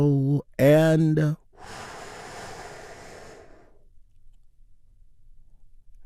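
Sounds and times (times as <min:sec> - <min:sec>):
speech: 0:00.0 - 0:01.4
deep breath in during a guided healing-breath exercise: 0:01.5 - 0:03.9.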